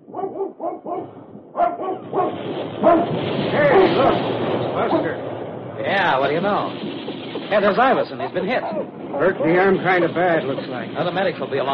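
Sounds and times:
dog barking: 0.0s - 4.2s, 8.1s - 9.6s
speech: 2.6s - 11.7s.

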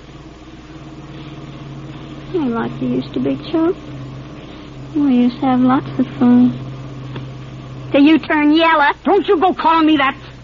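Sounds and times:
car engine droning during a drive: 0.0s - 10.4s
speech: 2.3s - 4.0s, 4.9s - 6.6s, 7.9s - 10.2s.

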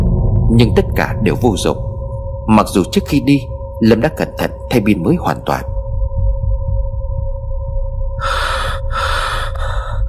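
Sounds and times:
low droning rumble: 0.0s - 10.0s
steady eerie tone: 0.0s - 10.0s
speech: 0.5s - 1.9s, 2.5s - 5.7s
heavy frightened panting breaths of a trembling soldier: 8.2s - 10.0s.

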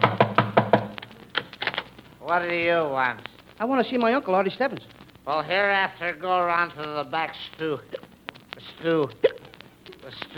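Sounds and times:
knocking on a wooden door: 0.0s - 0.9s
speech: 2.3s - 8.0s, 8.6s - 9.3s, 10.0s - 10.3s.

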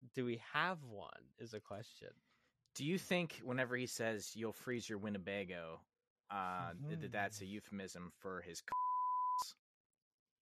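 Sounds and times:
speech: 0.2s - 8.8s
censor beep: 8.7s - 9.6s.

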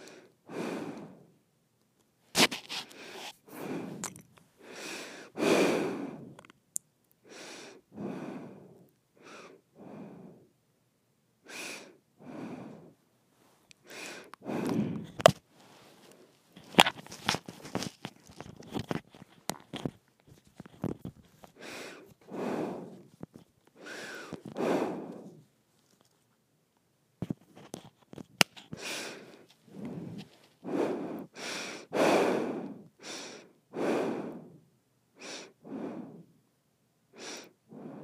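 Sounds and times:
snort-like nose sniffs: 0.0s - 1.3s, 2.3s - 6.4s, 7.3s - 10.5s, 11.5s - 13.0s, 13.8s - 17.9s, 20.6s - 23.2s, 23.8s - 26.0s, 28.6s - 34.6s, 35.2s - 36.3s, 37.2s - 38.0s
dry nose breathing: 0.0s - 1.4s, 2.4s - 6.5s, 7.2s - 10.5s, 11.5s - 13.0s, 13.8s - 17.0s, 20.6s - 25.5s, 28.5s - 36.4s, 37.2s - 38.0s.

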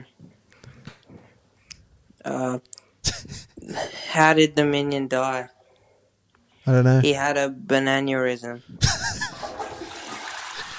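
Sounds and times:
speech: 2.2s - 5.6s, 6.7s - 8.8s
toilet flushing with swirling water: 9.1s - 10.7s.

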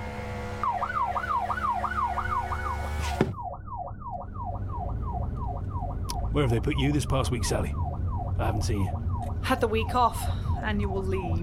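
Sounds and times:
police car siren wailing while driving in traffic near Whitechapel Tube: 0.5s - 11.4s
sharp thud: 3.0s - 3.4s
speech: 6.4s - 7.8s, 8.4s - 11.4s.

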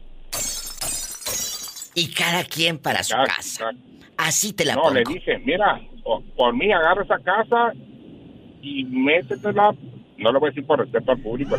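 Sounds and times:
cup shattering: 0.3s - 2.0s
speech: 2.0s - 7.9s, 8.6s - 11.5s.

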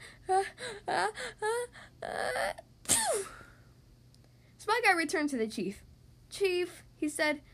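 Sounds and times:
speech: 0.4s - 1.5s, 5.0s - 7.5s
person acting out a sneeze: 2.9s - 3.4s.

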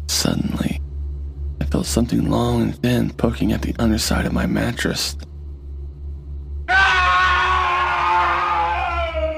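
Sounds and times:
low pulsing drone: 0.0s - 9.3s
speech: 0.1s - 0.4s, 1.8s - 5.3s
scream of horror: 6.6s - 9.3s.

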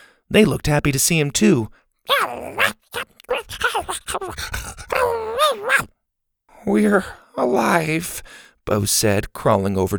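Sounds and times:
speech: 0.3s - 6.0s, 6.6s - 9.9s
dog growling and whining playfully: 2.1s - 5.9s.

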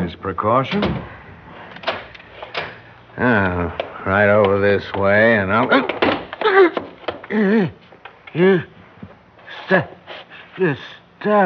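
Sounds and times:
speech: 0.2s - 1.2s, 3.2s - 8.7s, 9.5s - 11.4s
office door closing with a soft thud: 0.6s - 7.4s.

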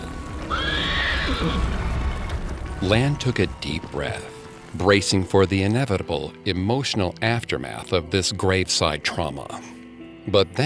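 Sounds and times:
carriage horse hooves clip-clopping: 0.0s - 7.3s
carriage horse neighing: 0.2s - 2.4s
speech: 0.5s - 1.8s, 2.8s - 10.6s.

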